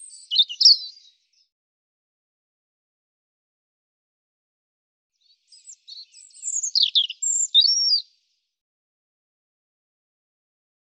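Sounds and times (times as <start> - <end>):
European robin singing: 0.0 - 1.5, 5.2 - 8.3.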